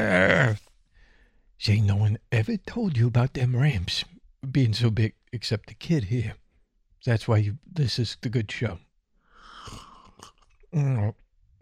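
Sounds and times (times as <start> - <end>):
speech: 1.6 - 6.4, 7.0 - 8.9, 9.7 - 11.2
person slurping a celebration sip from a drink: 9.5 - 10.6.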